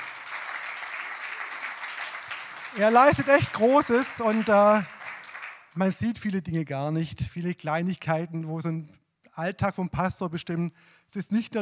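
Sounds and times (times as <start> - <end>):
church congregation applauding: 0.0 - 6.0
speech: 2.7 - 4.9, 5.8 - 11.5.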